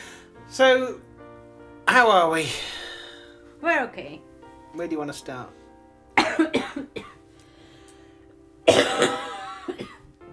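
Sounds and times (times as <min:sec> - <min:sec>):
speech: 0:00.6 - 0:01.1, 0:01.9 - 0:02.8, 0:03.6 - 0:05.6
massive coughing fit: 0:06.2 - 0:07.2, 0:08.6 - 0:10.1.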